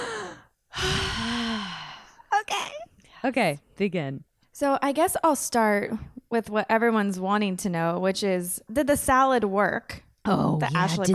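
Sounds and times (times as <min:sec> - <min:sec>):
deep breath: 0:00.0 - 0:02.3
speech: 0:03.2 - 0:11.1.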